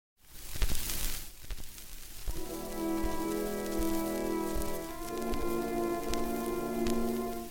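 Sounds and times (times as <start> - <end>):
surface crackle and pops from an old 1917 gramophone record: 0.2 - 7.4
faint thin orchestral music: 2.3 - 7.4.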